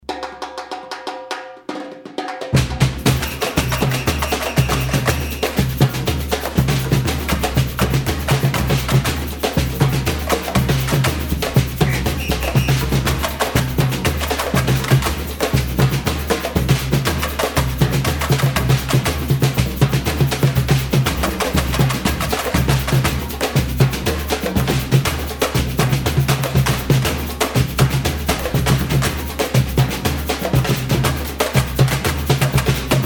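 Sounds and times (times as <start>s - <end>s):
tamborim playing a samba batucada pattern: 0.0s - 33.0s.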